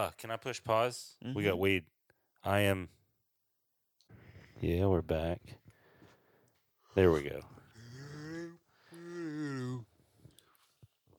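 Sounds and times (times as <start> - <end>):
speech: 0.0 - 3.0, 4.6 - 5.6, 6.9 - 7.6
breathy shuffling: 5.6 - 11.0
person yawning: 7.8 - 10.0.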